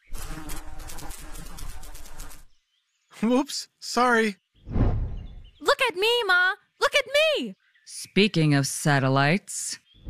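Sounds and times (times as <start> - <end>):
insects buzzing around a person's head: 0.0 - 2.5
speech: 3.2 - 4.4, 6.0 - 10.0.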